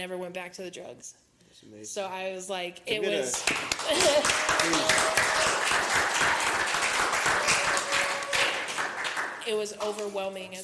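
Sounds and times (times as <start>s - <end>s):
speech: 0.0s - 6.8s, 9.5s - 10.6s
crowd applauding: 3.3s - 9.6s.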